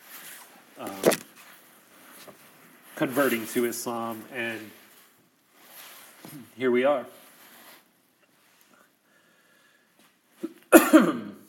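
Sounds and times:
speech: 0:00.8 - 0:01.1, 0:03.0 - 0:04.8, 0:06.3 - 0:07.2
person coughing harshly: 0:10.4 - 0:11.4.

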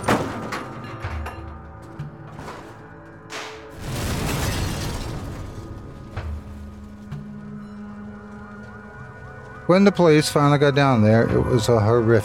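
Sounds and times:
truck crashing through wall onto rocks: 0:00.0 - 0:07.6
speech: 0:09.7 - 0:12.2.

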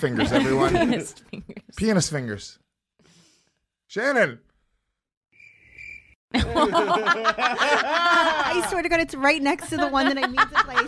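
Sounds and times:
loud laughter from a group of people: 0:00.0 - 0:01.6, 0:06.3 - 0:10.8
speech: 0:00.0 - 0:02.6, 0:03.9 - 0:04.5, 0:06.3 - 0:10.8
high-pitched cricket chirp sound effect: 0:05.3 - 0:06.2.

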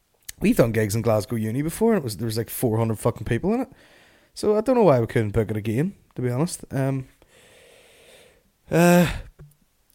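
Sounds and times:
speech: 0:00.4 - 0:07.2, 0:08.7 - 0:09.3
person yawning with a soft exhale: 0:08.7 - 0:09.4.

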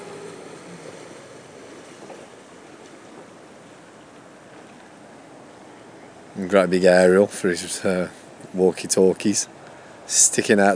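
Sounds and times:
water wash from a passing motorboat: 0:00.0 - 0:08.0
motorboat engine rumble: 0:00.0 - 0:10.7
speech: 0:06.4 - 0:10.7.

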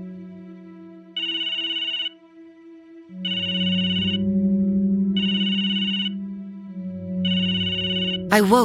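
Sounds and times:
phone ringtone with looping electronic melody over a low sustained tone: 0:01.2 - 0:02.1, 0:03.3 - 0:04.2, 0:05.2 - 0:06.1, 0:07.3 - 0:08.2
speech: 0:08.3 - 0:08.6.

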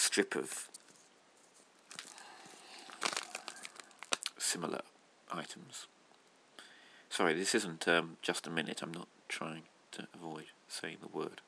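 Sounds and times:
speech: 0:00.2 - 0:00.7, 0:04.5 - 0:06.0, 0:07.2 - 0:11.4
sheet of perforated paper crinkling and rustling: 0:00.7 - 0:04.4.

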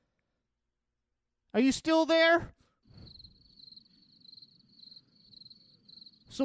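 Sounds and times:
speech: 0:01.5 - 0:02.6
cricket chirping: 0:02.9 - 0:06.4.

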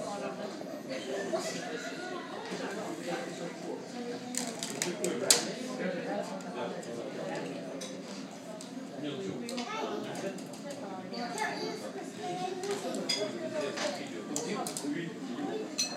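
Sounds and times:
murmur of chatter and voices in a Stockholm café: 0:00.0 - 0:15.9
dishes and cutlery clinking in a Stockholm café: 0:12.9 - 0:14.0, 0:15.8 - 0:15.9.

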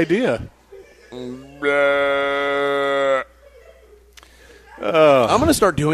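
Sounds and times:
speech: 0:00.0 - 0:03.0, 0:04.8 - 0:05.9
person imitating a cow mooing: 0:01.1 - 0:03.3.

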